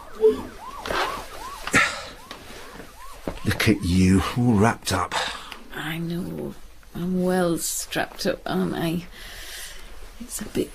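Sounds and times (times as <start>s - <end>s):
ambulance siren wailing: 0.0s - 5.1s
speech: 3.6s - 9.4s, 10.2s - 10.7s.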